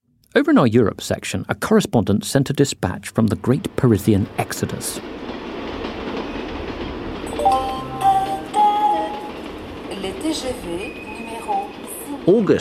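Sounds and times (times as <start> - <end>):
speech: 0.3 - 5.2, 10.3 - 11.0, 12.3 - 12.5
train rumbling at a mainline railway station: 1.4 - 12.5
metallic squeals and clanks: 6.1 - 6.8, 10.0 - 12.1.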